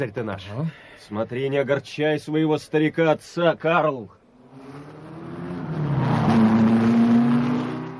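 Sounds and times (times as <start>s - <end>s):
speech: 0.0s - 4.8s
race car engines roaring at the start of a race: 4.3s - 7.9s.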